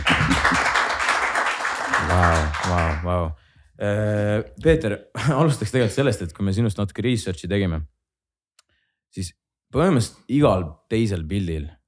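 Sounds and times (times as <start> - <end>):
crowd applauding: 0.0 - 3.1
laughter: 0.0 - 3.1
speech: 2.2 - 8.0, 9.1 - 11.8.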